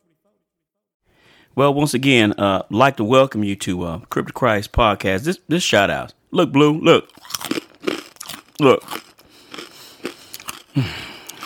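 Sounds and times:
speech: 1.6s - 7.6s, 8.6s - 9.0s, 10.8s - 11.0s
person chewing gum with smacks and crunchy bites: 7.0s - 11.4s.

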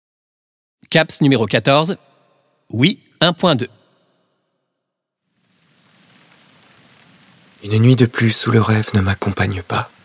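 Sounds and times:
speech: 0.9s - 2.1s, 2.7s - 3.8s, 7.6s - 10.0s
dense steady rain falling: 5.2s - 10.0s.

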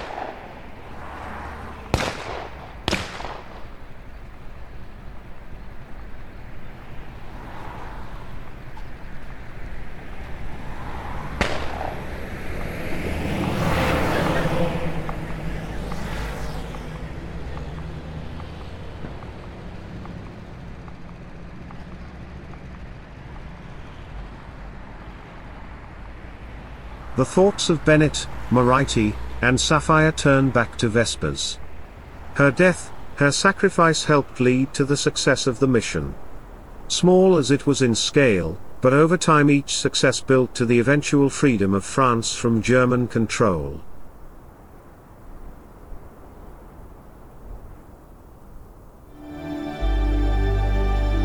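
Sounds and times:
gunfire at a crossroads in German-occupied France: 0.0s - 0.6s, 1.9s - 3.8s, 11.4s - 12.0s
explosions at a crossroads in German-occupied France: 0.0s - 0.7s, 1.9s - 3.7s, 11.4s - 12.0s
sharp loud bangs: 0.0s - 0.7s, 1.9s - 3.9s, 11.4s - 12.2s
constant low rumble of battle noise: 0.0s - 51.2s
speech: 27.2s - 31.6s, 32.4s - 36.2s, 36.9s - 43.9s.

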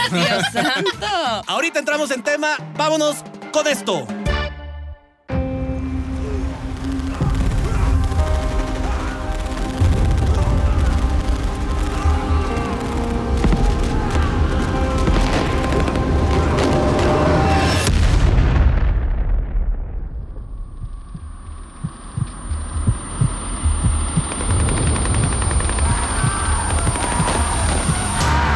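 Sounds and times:
laughter: 0.0s - 1.5s
speech: 0.1s - 4.2s
heavy booms: 5.9s - 28.4s
machine gun fire sound effect: 6.8s - 17.7s, 23.8s - 28.2s.

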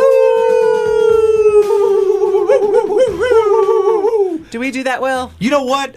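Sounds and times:
several people howling imitating wolves: 0.0s - 4.4s
speech: 4.7s - 5.9s.

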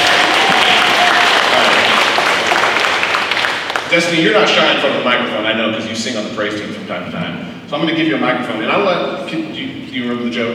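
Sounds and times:
audience of many hands applauding: 0.0s - 4.5s
speech: 3.9s - 10.5s.

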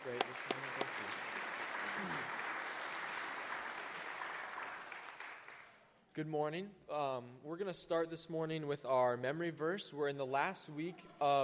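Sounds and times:
crowd applauding a worship band: 0.0s - 5.8s
speech: 6.2s - 11.4s.

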